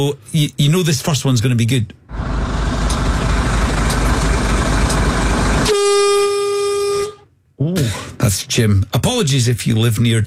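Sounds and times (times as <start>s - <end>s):
speech: 0.0s - 2.2s, 8.3s - 10.2s
heavy truck engine rumbling: 2.1s - 6.8s
deep bassy truck horn blaring: 5.6s - 7.2s.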